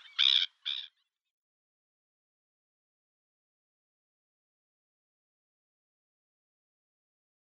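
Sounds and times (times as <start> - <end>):
black-winged stilt nasal yelp: 0.0 - 0.9.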